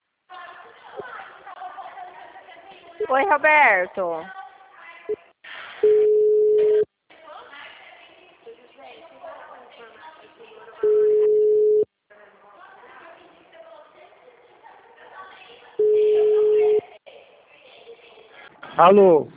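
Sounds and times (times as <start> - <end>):
speech: 3.0 - 4.4, 18.8 - 19.3
telephone busy signal after a dropped phone call: 5.8 - 6.8, 10.8 - 11.9, 15.8 - 16.8.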